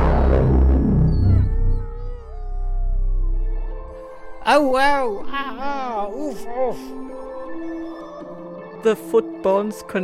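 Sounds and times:
dog howling: 0:00.2 - 0:08.8
dog whining: 0:00.8 - 0:03.2, 0:06.4 - 0:08.6
speech: 0:04.5 - 0:07.4, 0:08.8 - 0:10.0.

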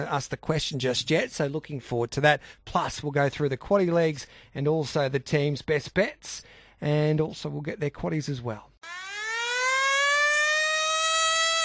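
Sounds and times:
speech: 0:00.0 - 0:09.0
siren tone marking quiz time: 0:08.8 - 0:11.6.

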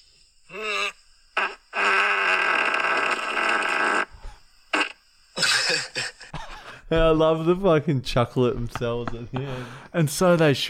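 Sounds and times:
loud buzzing rasping fart: 0:00.5 - 0:06.2
speech: 0:06.9 - 0:10.6.

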